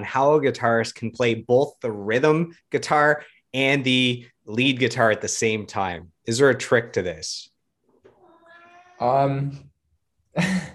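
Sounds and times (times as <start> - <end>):
speech: 0.0 - 7.5, 9.0 - 9.7, 10.4 - 10.7
cat meowing: 8.0 - 9.3.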